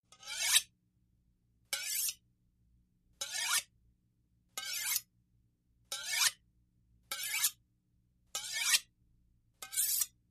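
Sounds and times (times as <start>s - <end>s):
carving knife sharpening: 0.1s - 0.7s, 1.7s - 2.2s, 3.2s - 3.7s, 4.6s - 5.1s, 5.9s - 6.4s, 7.1s - 7.6s, 8.4s - 8.9s, 9.6s - 10.2s.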